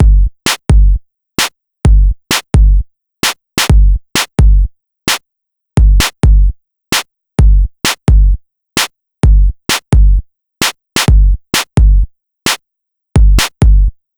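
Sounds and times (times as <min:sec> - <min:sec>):
electronic drum beat: 0:00.0 - 0:05.2, 0:05.8 - 0:06.5, 0:07.4 - 0:08.4, 0:09.2 - 0:12.6, 0:13.2 - 0:13.9.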